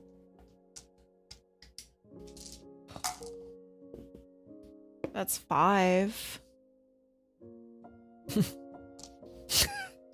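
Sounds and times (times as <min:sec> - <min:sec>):
dice rolling on a hard table in a game: 0:02.3 - 0:03.3
speech: 0:05.2 - 0:06.4, 0:08.4 - 0:08.6.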